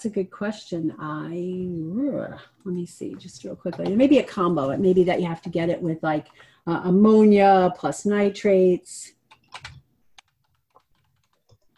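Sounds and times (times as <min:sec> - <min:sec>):
speech: 0:00.0 - 0:09.7
typing on a computer keyboard: 0:09.3 - 0:11.7.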